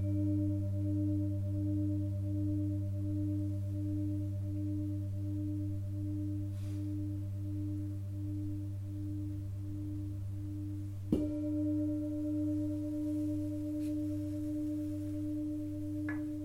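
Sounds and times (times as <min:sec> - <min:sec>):
singing bowl humming with a low drone: 0:00.0 - 0:16.4.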